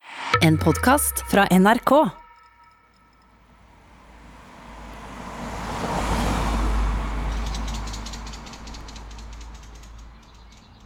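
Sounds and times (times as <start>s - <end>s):
speech: 0.4s - 2.2s
car engine and tyre noise while parking on a quiet street in Oslo: 4.2s - 10.8s.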